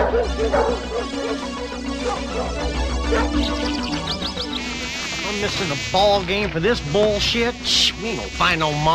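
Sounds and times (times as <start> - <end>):
female dog barking and whimpering excitedly: 0.0 - 3.6
speech: 0.2 - 4.0, 5.3 - 8.9.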